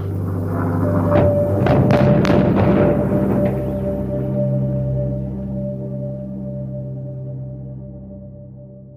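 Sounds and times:
low lingering rumble: 0.0s - 8.9s
steady droning hum: 0.0s - 8.9s
dynamite blasts demolishing steel mill blast furnaces in Youngstown: 1.0s - 4.1s.

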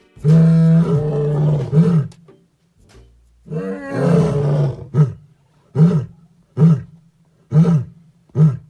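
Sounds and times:
lion roaring: 0.3s - 2.1s, 3.5s - 6.9s.

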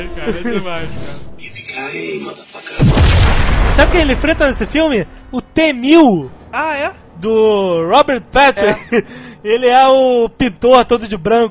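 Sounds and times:
speech: 0.0s - 11.4s
laughter: 0.2s - 0.9s, 8.5s - 9.2s
explosion with deep booming roar: 2.7s - 5.1s.

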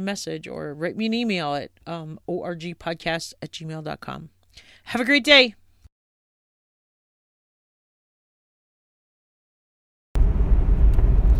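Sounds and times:
speech: 0.0s - 5.6s
steady low rumble with soft broadband hiss: 10.2s - 11.3s.

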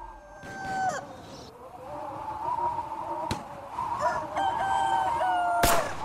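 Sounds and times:
rooster crowing in long drawn-out calls: 0.0s - 2.6s, 3.8s - 5.9s.

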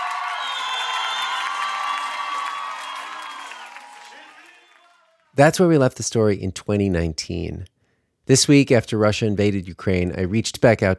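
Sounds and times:
large Eastern Ukrainian crowd cheering and screaming for the local team: 0.0s - 5.1s
speech: 5.4s - 7.7s, 8.3s - 10.9s.

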